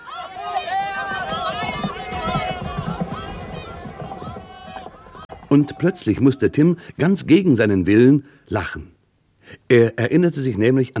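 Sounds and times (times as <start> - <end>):
spectators shouting and cheering at a horse race: 0.0 - 6.7
speech: 5.5 - 9.0, 9.6 - 10.9.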